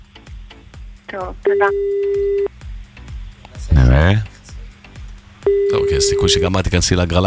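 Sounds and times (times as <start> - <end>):
speech: 1.1 - 2.5, 3.7 - 4.3, 6.0 - 7.2
telephone ringback beep on a regular line: 1.5 - 2.5, 5.5 - 6.6.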